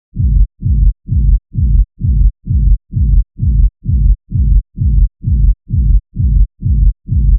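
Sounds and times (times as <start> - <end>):
techno bass loop in A at 130 BPM: 0.2 - 7.3.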